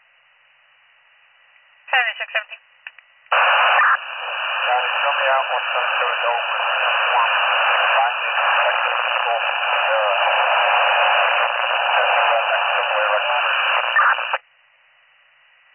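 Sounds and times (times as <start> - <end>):
speech: 2.0 - 2.7, 5.2 - 7.0
garbled two-way radio transmission voice: 3.3 - 14.4.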